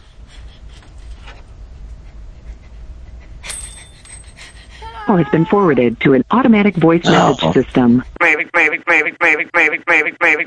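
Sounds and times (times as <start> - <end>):
dog panting and whimpering: 0.0 - 5.6
speech: 5.1 - 8.5, 9.1 - 10.4.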